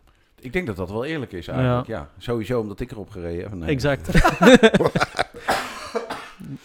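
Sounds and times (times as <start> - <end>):
speech: 0.4 - 6.0
laughter: 4.1 - 6.1
person coughing: 5.4 - 6.6.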